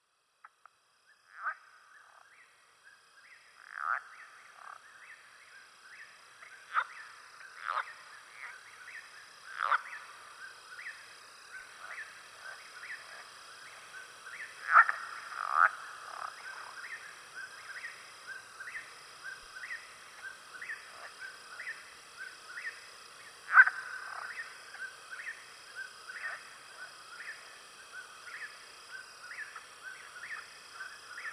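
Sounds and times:
Southern leopard frog calling: 0.4 - 2.6, 3.2 - 31.3
Southern toad calling: 6.6 - 31.3.

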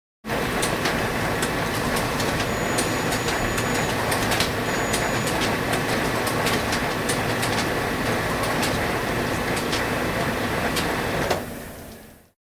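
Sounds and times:
photocopier running: 0.3 - 12.1.

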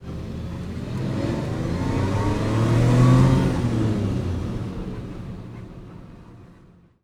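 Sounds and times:
cars running: 0.0 - 7.0.

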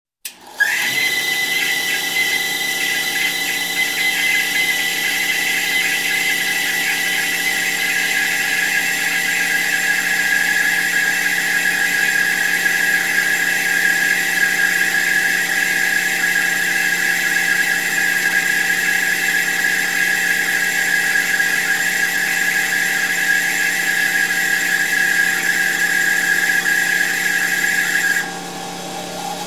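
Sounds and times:
motorized shop tool shaper turning on and running: 0.3 - 29.4.

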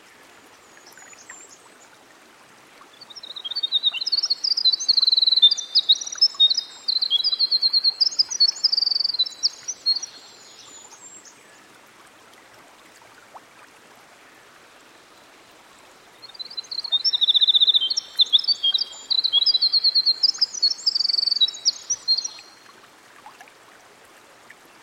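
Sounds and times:
winter wren singing by a stream: 3.1 - 11.3, 16.2 - 22.6.

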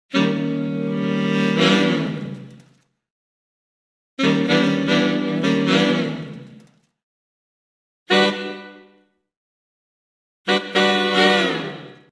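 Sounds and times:
jazz saxophone chords: 0.1 - 2.4, 4.2 - 6.4, 8.1 - 9.0, 10.5 - 12.1.

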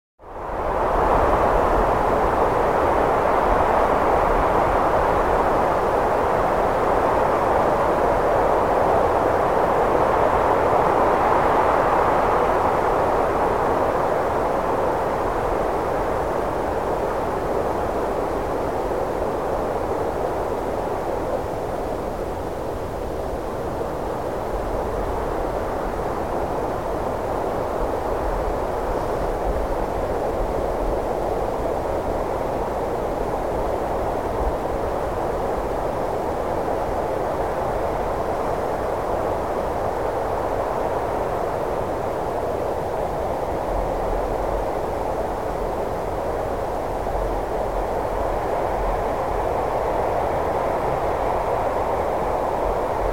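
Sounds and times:
light airy wind gusts: 0.2 - 53.1.

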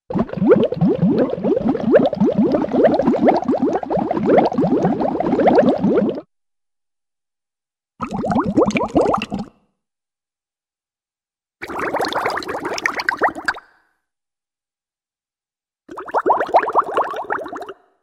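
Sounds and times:
large bubbles rising to surface with bloop: 0.1 - 6.3, 8.0 - 9.5, 11.6 - 13.6, 15.9 - 17.7.

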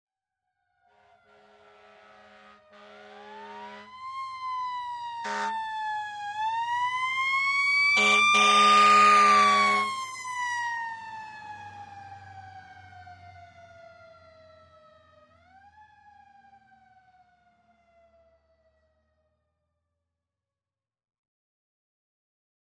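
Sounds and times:
fire siren: 0.7 - 19.5.

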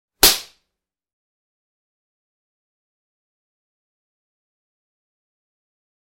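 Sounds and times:
face slap: 0.2 - 0.6.

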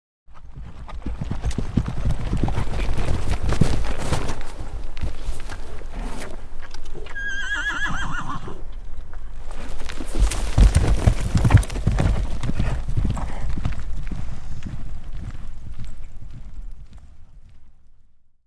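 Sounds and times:
single horse cantering then stopping: 0.3 - 18.3.

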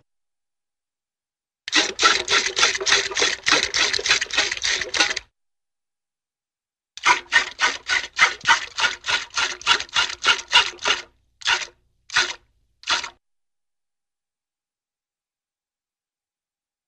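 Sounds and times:
water squirting into bucket: 1.7 - 5.3, 7.0 - 13.2.

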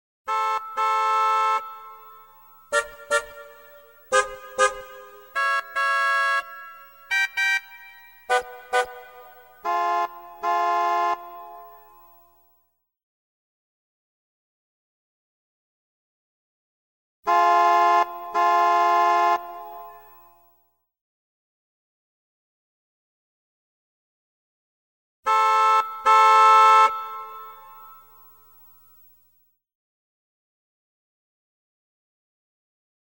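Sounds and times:
car horns: 0.3 - 12.3, 17.3 - 20.4, 25.3 - 28.6.

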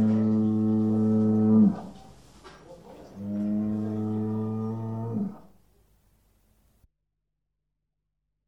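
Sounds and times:
adult male bull mooing: 0.0 - 2.0, 3.2 - 5.5.

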